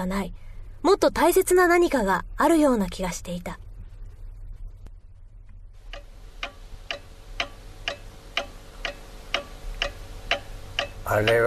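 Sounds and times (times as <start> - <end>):
speech: 0.0 - 3.6, 11.1 - 11.4
low hum: 0.0 - 11.4
grandfather clock ticking: 5.8 - 11.4.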